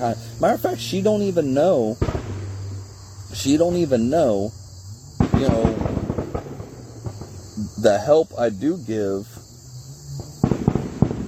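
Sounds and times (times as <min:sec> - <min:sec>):
speech: 0:00.0 - 0:02.2, 0:03.3 - 0:04.6, 0:05.4 - 0:05.8, 0:07.8 - 0:09.3
fireworks or gunshots popping: 0:00.0 - 0:04.2, 0:04.8 - 0:08.9, 0:10.2 - 0:11.2
faint steady hum of insects: 0:00.0 - 0:11.2.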